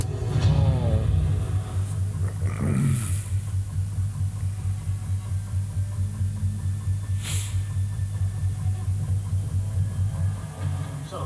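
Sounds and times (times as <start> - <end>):
speeder bike engines humming rumble at a base: 0.0 - 11.1.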